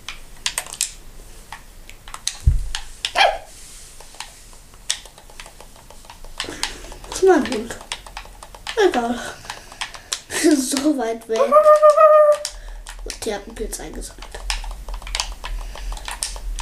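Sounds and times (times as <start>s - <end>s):
steady rapid keyboard clicking: 0.0s - 3.2s, 4.0s - 16.6s
dog barking while fighting: 3.2s - 3.5s
speech: 7.2s - 7.8s, 8.8s - 9.4s, 10.4s - 12.4s, 13.2s - 14.3s.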